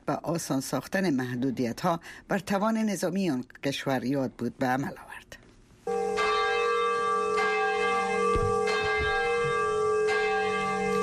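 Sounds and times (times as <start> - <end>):
speech: 0.3 - 5.3
large bell rung at atomic bombing memorial ceremony: 5.9 - 11.0.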